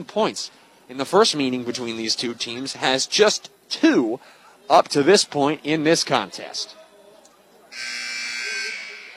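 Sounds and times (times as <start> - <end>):
speech: 0.0 - 6.8
basketball game crowd noise: 0.0 - 9.1
basketball arena buzzer blaring: 7.7 - 9.1.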